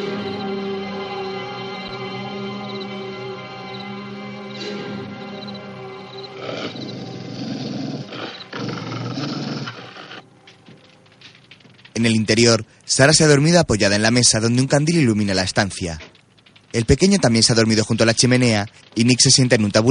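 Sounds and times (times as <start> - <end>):
dog growling in alarm outside a ranch: 6.4 - 10.2
speech: 12.0 - 16.1, 16.7 - 19.8.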